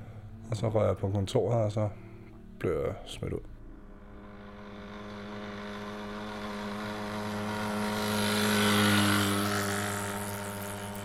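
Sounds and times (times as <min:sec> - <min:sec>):
speech: 0:00.5 - 0:02.0, 0:02.6 - 0:03.5
small moped engine humming with a buzzing drone: 0:03.6 - 0:11.0.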